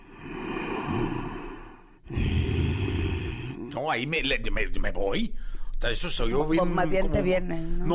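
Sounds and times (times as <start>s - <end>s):
forceful exhales in a breathing exercise with low voiced tone: 0.0s - 3.6s
speech: 3.8s - 7.9s.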